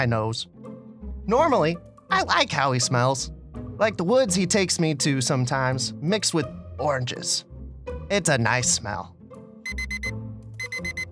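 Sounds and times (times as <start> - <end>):
speech: 0.0 - 0.7, 1.3 - 7.5, 8.1 - 9.9
alarm clock beeping shrill electronic tones: 9.7 - 11.1.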